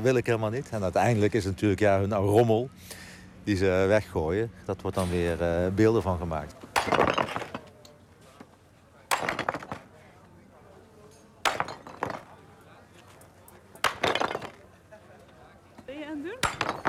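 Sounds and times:
speech: 0:00.0 - 0:07.4
recycled cast iron scrap being hacked into small pieces for cupola furnace melting: 0:06.7 - 0:07.7, 0:09.1 - 0:09.9, 0:11.4 - 0:12.4, 0:13.8 - 0:14.6, 0:16.4 - 0:16.8.

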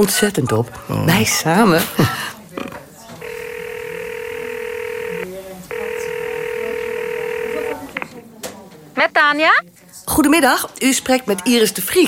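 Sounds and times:
speech: 0:00.0 - 0:02.7, 0:09.3 - 0:12.0
faint noise: 0:00.0 - 0:12.0
ringing tone of an outgoing phone call: 0:03.2 - 0:08.0.

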